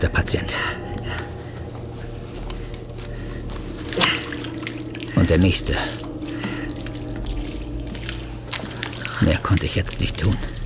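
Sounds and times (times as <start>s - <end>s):
speech: 0.0s - 1.2s, 5.3s - 6.0s, 9.2s - 10.6s
steady low hum: 0.0s - 10.6s
faint squishy liquid dribbles: 2.4s - 10.6s.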